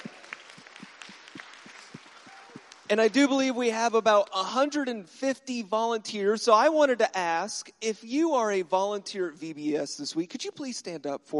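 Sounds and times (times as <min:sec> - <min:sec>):
large group applauding: 0:00.0 - 0:04.5
speech: 0:02.9 - 0:11.3.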